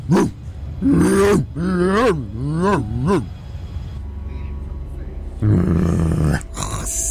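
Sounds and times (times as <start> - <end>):
dog growling and grunting: 0.0 - 3.3, 5.4 - 7.0.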